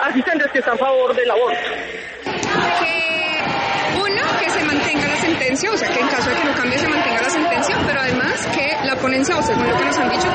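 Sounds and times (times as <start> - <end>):
speech: 0.1 - 2.7, 5.5 - 10.3
crowd of protesters shouting slogans: 2.3 - 10.3.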